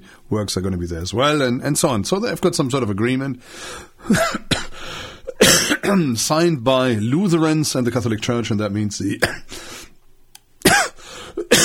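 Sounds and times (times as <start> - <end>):
speech: 0.3 - 4.6, 5.4 - 9.8
man delivering a sermon coughing harshly: 4.0 - 6.0, 9.2 - 9.5, 10.6 - 11.6.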